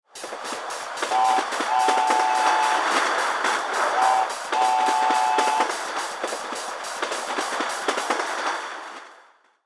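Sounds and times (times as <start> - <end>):
RC toy train moving: 0.2 - 9.0
RC toy train whistle blowing: 1.0 - 5.8.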